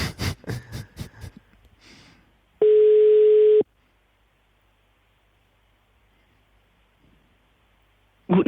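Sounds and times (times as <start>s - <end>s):
telephone busy signal on a failed call: 2.6s - 3.6s.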